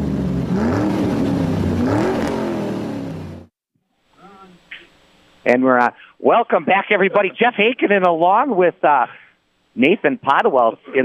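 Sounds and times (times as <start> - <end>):
car engine cranking and revving: 0.0 - 3.5
speech: 5.5 - 9.2, 9.8 - 11.0.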